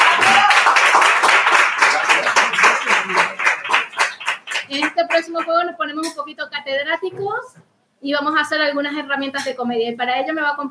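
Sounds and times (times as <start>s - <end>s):
audience applause at a live comedy show: 0.0s - 5.3s
speech: 5.2s - 10.6s.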